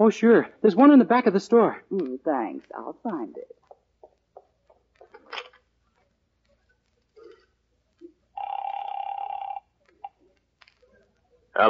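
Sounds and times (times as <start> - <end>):
speech: 0.0 - 3.6
telephone ringing in the back of a store: 8.4 - 9.7.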